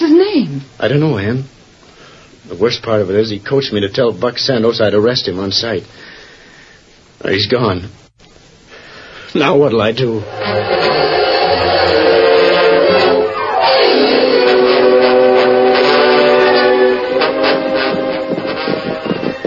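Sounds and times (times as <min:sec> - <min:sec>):
speech: 0:00.6 - 0:01.6, 0:02.5 - 0:06.1, 0:07.2 - 0:08.0, 0:09.3 - 0:11.0
loud sustained train whistle: 0:10.2 - 0:19.4.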